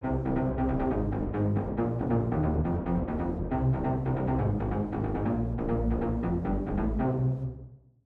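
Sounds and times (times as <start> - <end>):
wet synth bass: 0.0 - 7.1.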